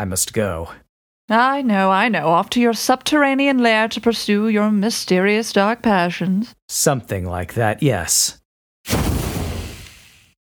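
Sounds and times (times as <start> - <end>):
speech: 0.0 - 9.0
smoke bomb going off: 8.9 - 10.4.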